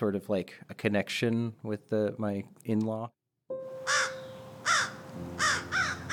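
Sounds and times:
speech: 0.0 - 3.2
crow cawing at a library: 3.8 - 6.1.

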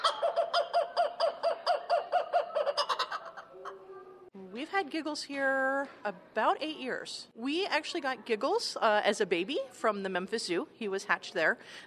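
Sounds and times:
kookaburra laughing call: 0.0 - 3.8
speech: 4.8 - 11.8.

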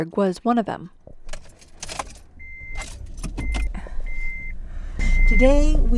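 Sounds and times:
speech: 0.0 - 1.0, 5.3 - 5.9
lineup of cars idling at a COVID testing site at a school: 1.0 - 5.9
keys jangling: 1.2 - 3.7.

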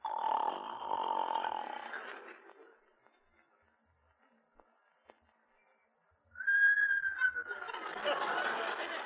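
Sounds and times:
snoring: 0.0 - 2.3
laughter: 7.1 - 9.0.

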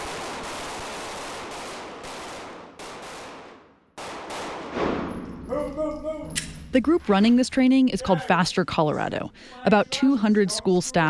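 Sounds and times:
gunshots in a firearms training drill for school staff in Colorado: 0.0 - 5.6
speech: 6.8 - 11.0.

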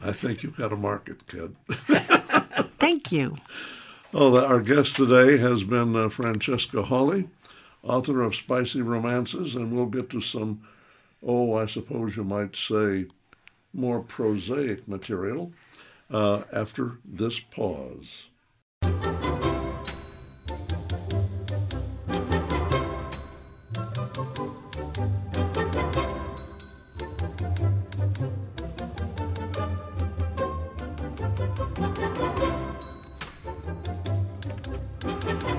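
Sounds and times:
speech: 0.0 - 19.1
laughter: 1.7 - 2.8
busy backing music: 18.8 - 35.5
typewriter bell ding: 19.8 - 20.7, 23.1 - 24.0, 26.4 - 27.4, 32.8 - 33.8.

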